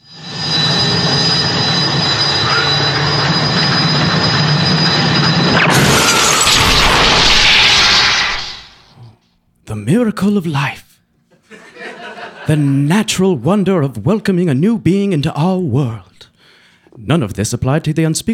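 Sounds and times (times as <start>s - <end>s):
science centrifuge spinning up to ultra spin drive: 0.0s - 8.8s
speech: 9.9s - 10.8s, 12.5s - 16.1s, 17.0s - 18.3s
laughter: 11.3s - 12.9s.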